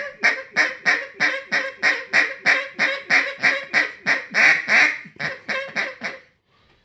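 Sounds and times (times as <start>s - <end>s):
duck call blown in a hiccup cadence: 0.0s - 6.3s.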